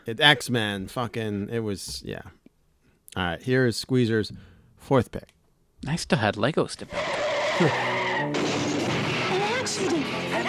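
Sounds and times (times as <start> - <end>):
speech: 0.0 - 2.4, 3.1 - 8.4
car skidding with long loud tire squeal in an accident: 6.9 - 8.8
rumbling car crash: 8.3 - 10.0.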